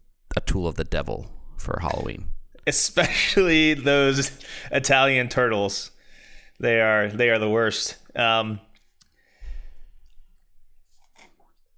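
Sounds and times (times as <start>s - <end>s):
speech: 0.5s - 6.0s, 6.6s - 8.7s
slurping a frozen drink through a straw from a cup: 8.7s - 11.7s
breathy exhale: 9.2s - 9.9s.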